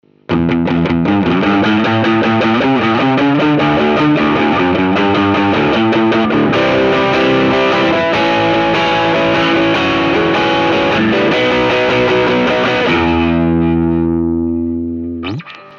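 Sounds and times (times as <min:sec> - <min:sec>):
electric guitar through tube drive effect of a guitar processor: 0:00.1 - 0:15.7.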